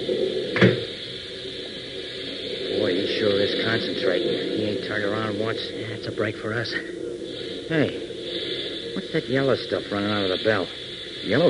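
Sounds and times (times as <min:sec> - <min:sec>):
steady low hum: 0:00.0 - 0:11.4
door pushed shut: 0:00.6 - 0:00.9
speech: 0:03.6 - 0:07.0, 0:07.7 - 0:08.1, 0:09.0 - 0:11.4.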